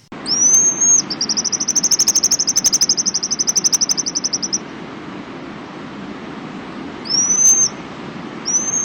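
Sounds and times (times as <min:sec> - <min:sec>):
pigeon guillemot whistled trilling calls: 0:00.0 - 0:04.6, 0:07.0 - 0:07.8, 0:08.4 - 0:08.8
low steady hiss: 0:00.0 - 0:08.8.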